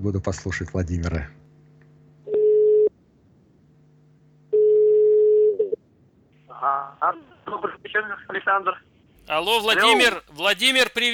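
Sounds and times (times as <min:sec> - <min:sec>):
speech: 0:00.0 - 0:01.4, 0:07.1 - 0:11.1
telephone line tones as a call is placed to an expert: 0:02.2 - 0:02.9, 0:04.5 - 0:05.8.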